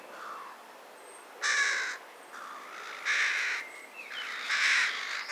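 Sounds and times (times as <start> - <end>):
carrion crow cawing hoarsely: 0.2 - 0.6, 1.4 - 3.6, 4.2 - 5.2.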